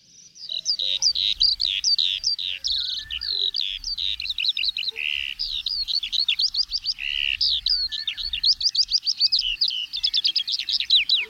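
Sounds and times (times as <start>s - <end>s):
songbird singing at the edge of a field and forest: 0.0s - 11.2s.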